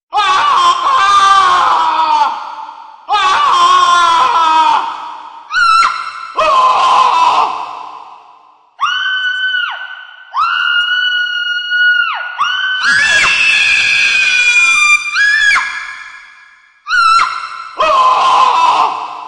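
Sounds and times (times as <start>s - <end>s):
ghost scream: 0.2s - 19.2s.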